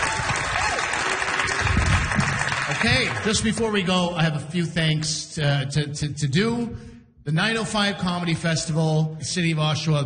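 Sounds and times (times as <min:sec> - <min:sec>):
comedy festival audience applause: 0:00.0 - 0:03.6
speech: 0:02.8 - 0:10.0.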